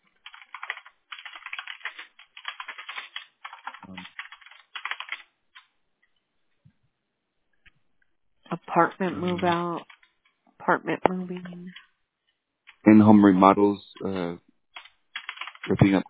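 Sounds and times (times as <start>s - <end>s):
notes typed on a computer keyboard: 0.2s - 5.7s, 8.9s - 10.3s, 14.8s - 15.8s
speech: 8.5s - 9.9s, 10.7s - 11.8s, 12.8s - 14.4s, 15.7s - 16.0s.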